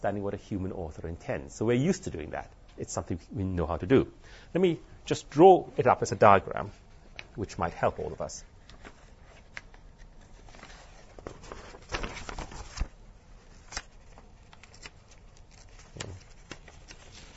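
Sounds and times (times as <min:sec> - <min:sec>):
speech: 0:00.0 - 0:06.8, 0:07.4 - 0:08.5
sheets of paper rustling and crinkling as they are pulled apart: 0:06.7 - 0:17.3.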